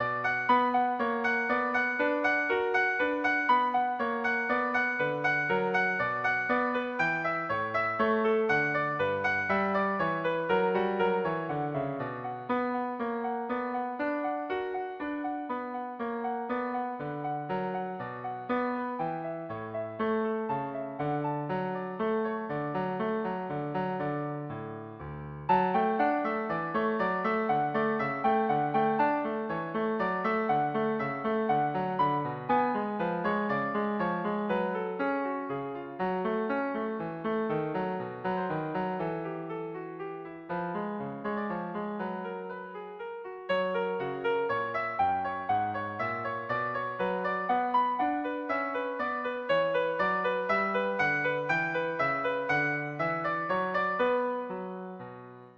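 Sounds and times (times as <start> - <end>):
minuet in B minor on piano: 0.0 - 55.5.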